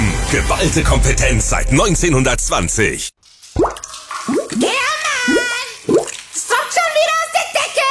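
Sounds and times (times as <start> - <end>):
speech: 0.3 - 3.2, 4.2 - 6.0
loud water drips from a leak: 3.2 - 7.8.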